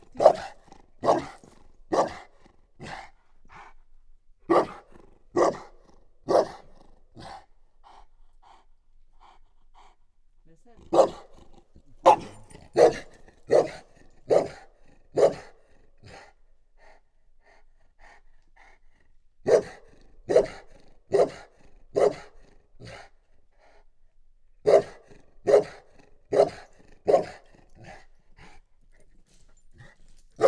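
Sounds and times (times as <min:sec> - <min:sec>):
chained dog barking: 0:00.0 - 0:03.0, 0:04.5 - 0:04.8, 0:05.4 - 0:05.7, 0:06.3 - 0:06.7, 0:10.9 - 0:15.5, 0:19.5 - 0:21.4, 0:22.0 - 0:22.3, 0:24.7 - 0:28.5, 0:29.8 - 0:30.4.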